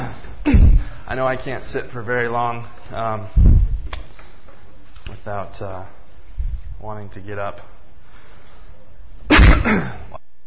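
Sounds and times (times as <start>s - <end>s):
loud harsh cough close to a microphone: 0.0s - 1.0s, 9.3s - 10.2s
speech: 1.1s - 3.5s, 5.1s - 6.0s, 6.8s - 7.8s.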